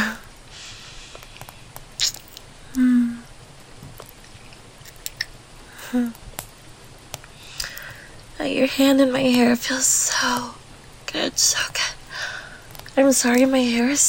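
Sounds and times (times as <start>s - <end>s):
heavy rain outside: 0.0s - 14.0s
soft wet kissing sounds: 2.0s - 2.4s
speech: 8.6s - 10.6s, 11.4s - 11.8s, 13.0s - 14.0s.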